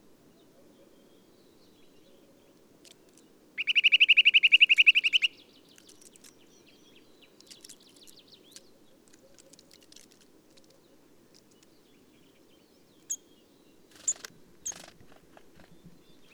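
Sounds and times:
faint clicks and soft ticks: 0:02.6 - 0:03.3, 0:05.7 - 0:06.4, 0:07.4 - 0:11.7
Eurasian nuthatch calling with loud piping notes: 0:03.6 - 0:06.1.

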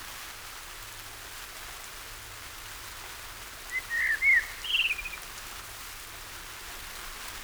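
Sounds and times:
common blackbird song, Turdus merula: 0:03.7 - 0:05.4.

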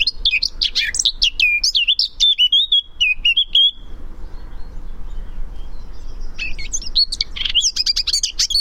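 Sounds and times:
Eurasian blackcap Sylvia atricapilla scratchy warbling song: 0:00.0 - 0:08.5.

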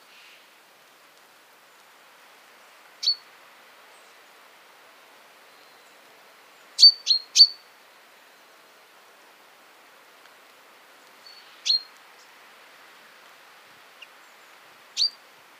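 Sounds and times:
quiet background noise: 0:00.0 - 0:15.5
common chaffinch Fringilla coelebs crisp clipped call notes: 0:03.0 - 0:03.2, 0:06.8 - 0:07.6, 0:11.2 - 0:11.9, 0:15.0 - 0:15.2.

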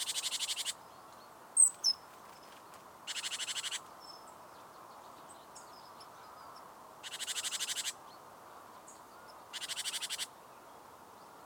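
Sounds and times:
Great tit Parus major harsh chattering call with dry pulsed rattles: 0:00.0 - 0:00.8, 0:01.6 - 0:03.8, 0:07.0 - 0:08.0, 0:09.5 - 0:10.3
quiet hiss: 0:00.0 - 0:11.4.

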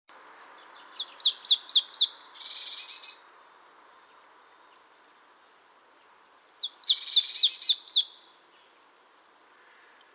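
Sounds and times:
marsh tit Poecile palustris calling: 0:00.8 - 0:03.2, 0:06.6 - 0:08.3.

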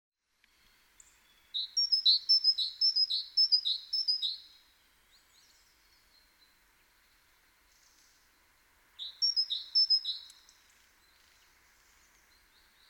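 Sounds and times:
great tit Parus major singing: 0:01.1 - 0:04.5, 0:09.0 - 0:11.3.

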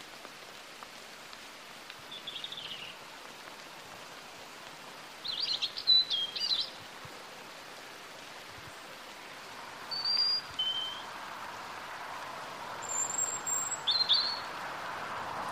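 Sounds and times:
constant hiss: 0:00.0 - 0:15.5
European robin singing: 0:02.1 - 0:03.0, 0:05.2 - 0:06.8, 0:09.9 - 0:11.1, 0:12.8 - 0:14.5.

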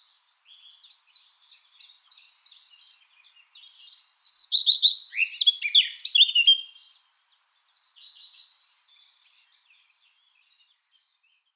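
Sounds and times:
Eurasian blackcap Sylvia atricapilla singing: 0:00.1 - 0:06.8.

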